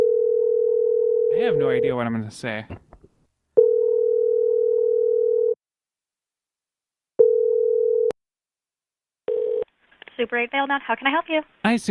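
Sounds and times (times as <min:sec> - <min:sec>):
telephone ringing tone heard over a call line: 0:00.0 - 0:01.9, 0:03.6 - 0:05.6, 0:07.2 - 0:08.2, 0:09.3 - 0:09.6
speech: 0:01.4 - 0:02.9, 0:10.2 - 0:11.8.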